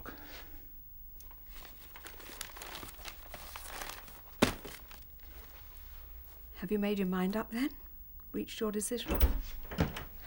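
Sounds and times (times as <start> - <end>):
newspaper rustling as it is put down: 1.3 - 5.7
speech: 6.6 - 7.8, 8.4 - 9.6.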